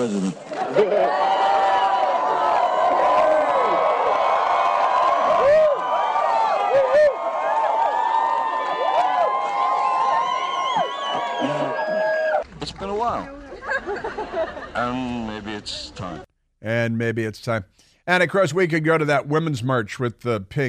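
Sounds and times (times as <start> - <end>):
speech: 0.0 - 1.3, 14.1 - 20.6
large crowd of Democrats cheering: 0.4 - 12.5
laughter: 0.5 - 1.4, 10.8 - 12.3, 13.5 - 15.2
many voices whooping and shouting: 0.6 - 12.4.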